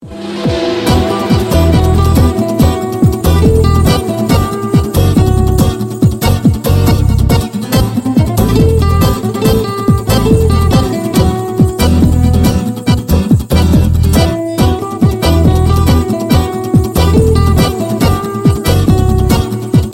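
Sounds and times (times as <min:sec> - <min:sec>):
tango guitar: 0:00.8 - 0:19.9.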